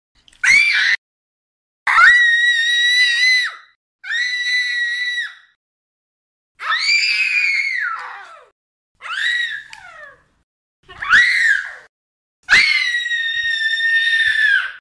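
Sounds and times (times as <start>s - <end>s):
young girls screaming: 1.9s - 5.4s, 6.6s - 10.2s, 10.9s - 14.7s.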